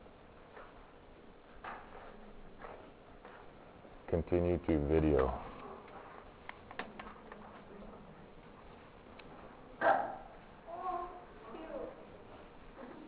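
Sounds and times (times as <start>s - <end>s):
low noise: 0.3s - 13.0s
speech: 4.1s - 5.5s
toy poodle barking and yipping in a video played through a speaker: 9.8s - 10.4s.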